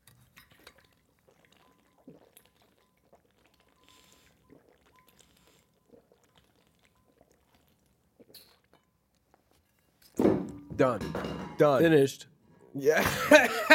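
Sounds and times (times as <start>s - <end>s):
sipping water hard through a straw: 0.0s - 8.8s
gulping and slurping of water in a drinking contest: 0.0s - 9.2s
cup set down with a clunk: 10.2s - 11.7s
speech: 10.2s - 13.7s
laughter: 12.9s - 13.7s.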